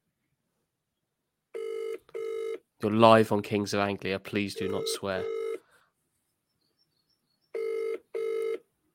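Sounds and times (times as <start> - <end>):
telephone ringback tones on a call to a mobile phone: 1.6 - 2.6, 4.6 - 5.6, 7.6 - 8.6
speech: 2.8 - 5.4.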